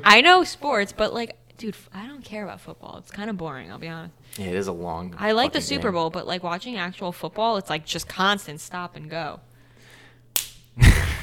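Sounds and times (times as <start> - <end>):
speech: 0.0 - 9.5
hand slapping bare chest skin: 10.4 - 10.7.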